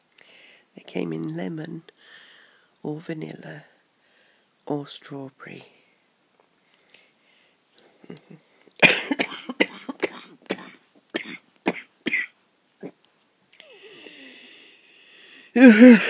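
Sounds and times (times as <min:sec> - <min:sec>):
speech: 0:00.9 - 0:02.2, 0:02.8 - 0:03.7, 0:04.7 - 0:05.8, 0:08.1 - 0:08.5, 0:15.6 - 0:16.0
harsh coughing fit: 0:08.8 - 0:13.0, 0:15.6 - 0:16.0.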